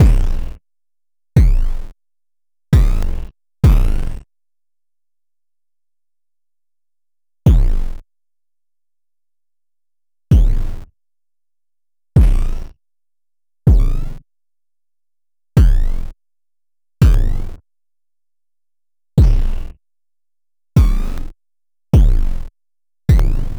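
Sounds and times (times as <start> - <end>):
bass drum rhythms: 0.0 - 0.4, 1.4 - 1.8, 2.8 - 4.1, 7.5 - 7.9, 10.3 - 10.7, 12.2 - 12.6, 13.7 - 14.1, 15.6 - 16.0, 17.0 - 17.4, 19.2 - 19.6, 20.8 - 21.2, 22.0 - 22.4, 23.1 - 23.5.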